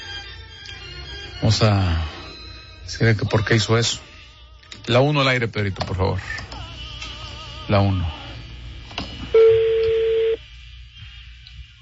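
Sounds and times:
speech: 1.4s - 2.2s, 2.9s - 4.1s, 4.8s - 6.4s, 7.7s - 8.2s
single steady electronic phone line ring tone: 9.4s - 10.4s.

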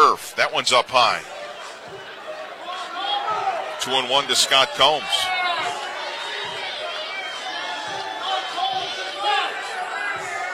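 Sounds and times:
speech: 0.2s - 2.1s, 3.8s - 5.3s
baseball crowd jeering the home plate umpire over a pitch call: 1.3s - 10.5s.

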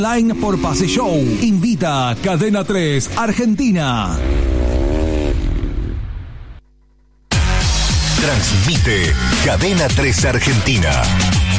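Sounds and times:
speech: 0.0s - 4.8s, 8.2s - 11.5s
racing motorcycles roaring on a dirt oval track: 0.0s - 6.6s.

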